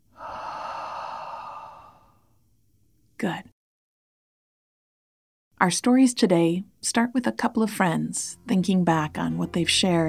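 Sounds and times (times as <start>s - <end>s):
sigh through the mouth during a relaxation breathing exercise: 0.0s - 2.3s
speech: 3.2s - 3.5s, 5.6s - 10.0s.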